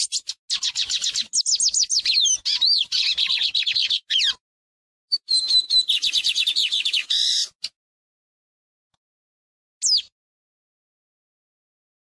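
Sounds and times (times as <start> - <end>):
lined seedeater twittering song: 0.0 - 4.4, 5.1 - 7.8, 9.8 - 10.1.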